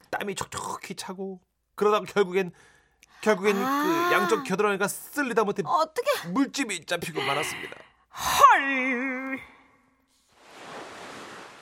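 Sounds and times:
speech: 0.1 - 9.5
ocean waves washing in at the seaside: 10.3 - 11.5.

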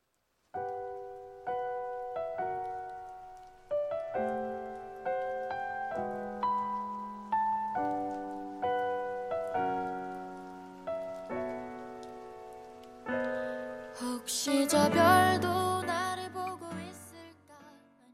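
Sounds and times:
rain pattering softly: 0.0 - 17.3
gentle sustained piano chords: 0.6 - 18.1
person singing an emotional song: 13.5 - 18.1.

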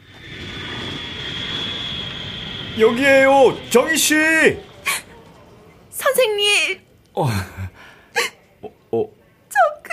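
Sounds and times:
jet engine roar from an airplane in flight to Japan: 0.0 - 6.1
sustained high whine of airplane jet engine: 0.0 - 6.1
speech: 2.8 - 4.7, 7.2 - 7.8, 8.9 - 9.2.

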